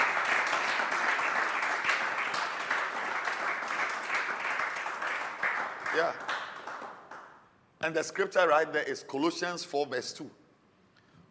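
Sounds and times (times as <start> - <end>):
audience hand clapping: 0.0 - 7.5
speech: 6.0 - 6.3, 7.8 - 10.4.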